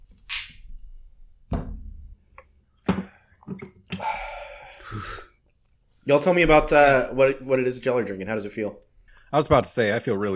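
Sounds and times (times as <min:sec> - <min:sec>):
glasses clinking together in a toast: 0:00.3 - 0:00.7
speech: 0:06.1 - 0:10.3.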